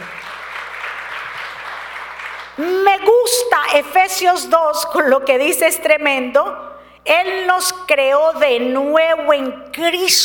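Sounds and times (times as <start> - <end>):
audience applause during a sermon: 0.0 - 2.6
speech: 2.6 - 10.2.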